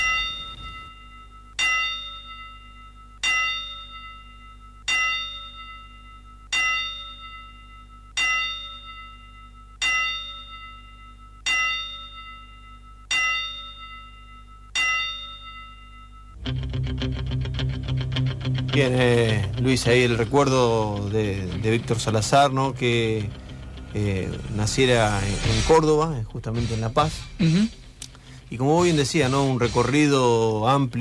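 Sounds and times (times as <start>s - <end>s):
bell tolls struck as a memorial tribute: 0.0s - 30.3s
buzzing noise: 16.3s - 30.6s
speech: 18.8s - 27.8s, 28.5s - 30.9s.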